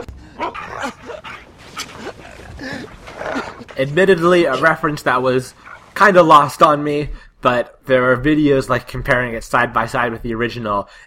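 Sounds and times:
dog whining: 0.0 - 3.8
dog giving excited high-pitched barks and yips: 0.0 - 6.0
speech: 0.4 - 1.2, 3.8 - 11.0.

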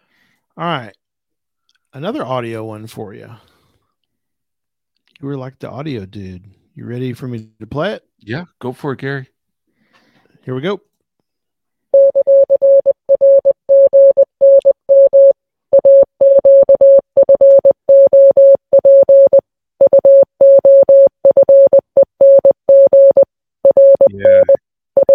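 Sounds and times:
speech: 0.6 - 1.0, 2.0 - 3.5, 5.2 - 9.3, 10.4 - 10.9
Morse code sent as a keyed steady electronic tone: 12.0 - 25.1.

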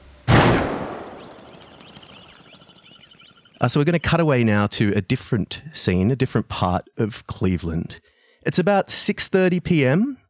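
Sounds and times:
single sharp gunshot with decay: 0.3 - 1.6
speech: 3.6 - 10.2.

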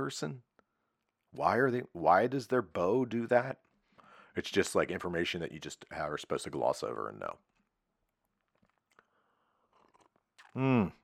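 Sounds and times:
speech: 0.0 - 0.5, 1.3 - 3.6, 4.4 - 7.5, 10.6 - 11.0
slurping hot coffee: 8.4 - 11.0.

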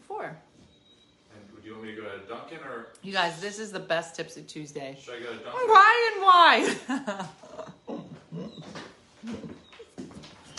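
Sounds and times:
speech: 1.8 - 7.5
laughter: 6.6 - 8.5
dogs whining and yelping at the door: 7.4 - 10.5.

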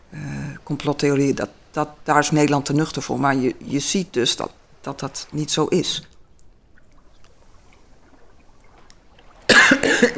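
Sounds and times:
speech: 0.7 - 6.1
person coughing harshly: 9.5 - 10.1.

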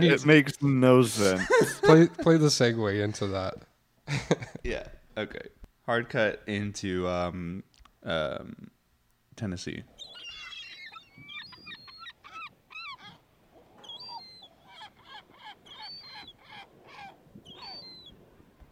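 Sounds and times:
speech: 0.0 - 8.8, 9.4 - 9.9
laughter: 1.2 - 2.4, 4.1 - 4.6
loud busy chorus of birds honking and cawing: 10.0 - 13.2, 13.8 - 18.1.

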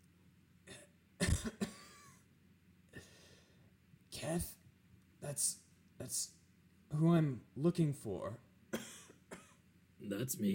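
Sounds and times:
person coughing: 0.7 - 2.2, 8.8 - 9.6
speech: 4.3 - 4.6, 5.2 - 8.4, 10.0 - 10.5.

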